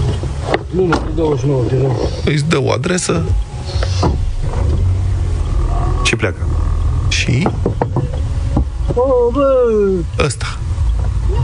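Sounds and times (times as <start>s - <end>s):
car engine idling: 0.0s - 11.4s
speech: 0.7s - 3.4s, 4.0s - 4.2s, 6.2s - 6.6s, 7.2s - 8.0s, 9.0s - 10.5s.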